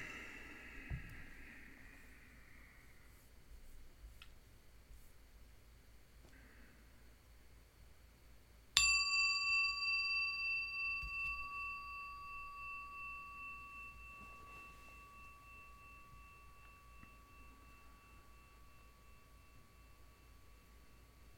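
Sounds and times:
faint small noises: 0.0s - 21.3s
meditation bell struck to begin a sitting practice: 8.8s - 21.3s.

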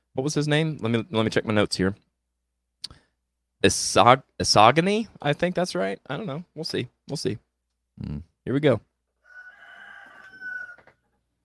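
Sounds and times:
speech: 0.2s - 2.1s, 3.6s - 7.4s, 8.0s - 8.9s
rooster crowing: 9.2s - 11.0s.

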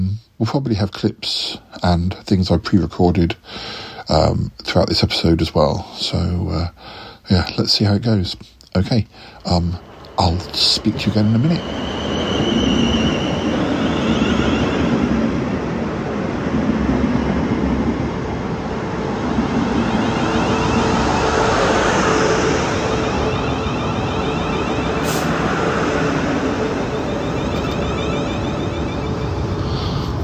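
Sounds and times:
speech: 0.4s - 12.0s
faint high whine: 7.4s - 30.2s
moving train rumble from inside a carriage: 8.8s - 30.2s
sharp squeal: 9.7s - 15.3s, 19.9s - 30.2s.

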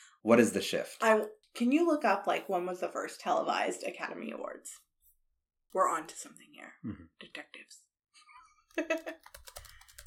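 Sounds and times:
speech: 0.2s - 4.8s, 5.7s - 7.9s, 8.8s - 9.4s
fingers typing on a computer keyboard: 8.8s - 10.0s.

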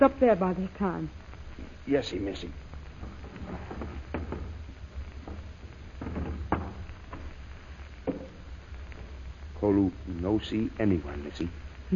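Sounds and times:
speech: 0.0s - 2.6s, 9.6s - 11.9s
wooden door worked open with knocks and creaks: 2.5s - 8.5s.

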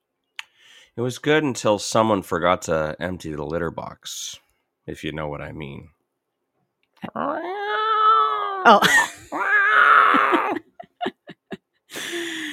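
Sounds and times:
speech: 1.0s - 6.0s, 7.0s - 7.5s, 8.6s - 9.4s
cats caterwauling in a fight: 7.1s - 10.7s
laughter: 10.1s - 12.5s.

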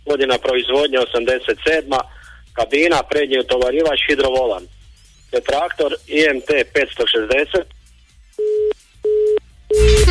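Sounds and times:
speech: 0.1s - 7.8s
mobile phone busy tone beeps after a dropped call: 8.4s - 10.0s.

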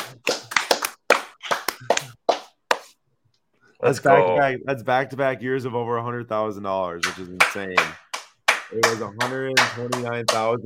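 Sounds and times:
hands clapping at the close of a charity auction: 0.0s - 3.0s, 7.0s - 10.6s
speech: 3.8s - 8.0s, 8.7s - 10.6s.

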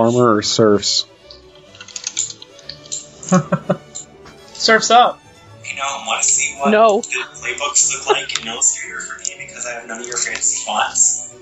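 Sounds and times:
speech: 0.0s - 1.1s, 3.3s - 3.8s, 4.6s - 11.4s
computer keyboard clacking from fast typing: 1.6s - 3.1s
laughter: 2.8s - 4.4s, 6.6s - 10.8s.

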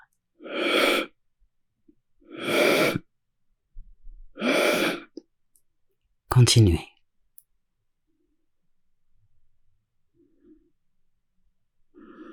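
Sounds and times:
forceful breaths in a pranayama yogic breathing exercise: 0.4s - 1.2s, 2.3s - 3.1s, 4.4s - 5.2s, 12.0s - 12.3s
speech: 6.4s - 6.9s.

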